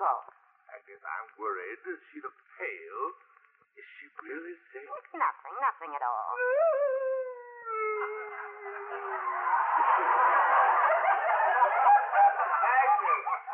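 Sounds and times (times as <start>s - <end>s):
speech: 1.1s - 7.2s, 8.0s - 8.8s
woman howling: 6.3s - 9.5s
laughter: 7.7s - 13.5s.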